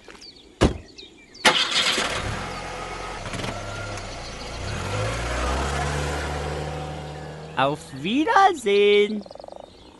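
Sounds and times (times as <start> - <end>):
sharp thuds: 0.6 - 0.9
car engine starting, idling and driving off: 1.4 - 8.2
speech: 7.6 - 9.4.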